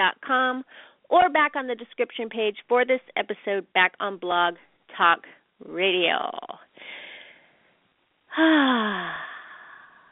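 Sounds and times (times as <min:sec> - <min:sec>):
speech: 0:00.0 - 0:07.0, 0:08.3 - 0:09.3
deep breath: 0:00.7 - 0:01.0, 0:06.8 - 0:10.1.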